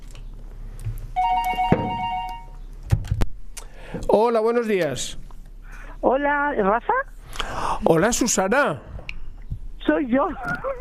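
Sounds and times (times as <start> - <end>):
telephone ringing with an incoming call: 1.2 - 2.6
speech: 3.9 - 5.2, 6.0 - 7.2, 7.8 - 8.9, 9.8 - 10.7.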